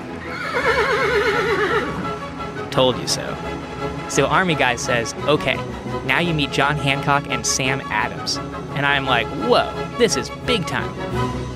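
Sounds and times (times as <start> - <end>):
horse whinnying: 0.0 - 2.3
speech: 2.8 - 11.4.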